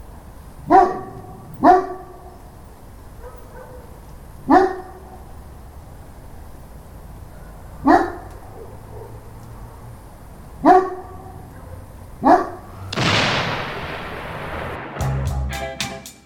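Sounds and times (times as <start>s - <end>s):
dog barking: 0.7s - 2.4s, 3.2s - 5.3s, 7.3s - 9.8s, 10.6s - 12.7s
rushing whoosh: 12.6s - 15.8s.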